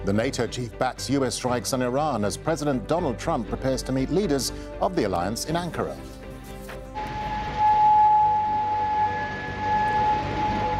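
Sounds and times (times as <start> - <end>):
speech: 0.0 - 6.2
air raid siren wailing: 7.0 - 10.7.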